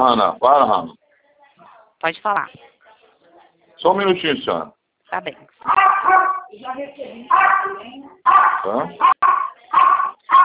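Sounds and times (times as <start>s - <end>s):
speech: 0.0s - 1.0s, 2.0s - 2.7s, 3.8s - 10.4s
dog barking: 5.6s - 6.5s, 7.3s - 10.4s.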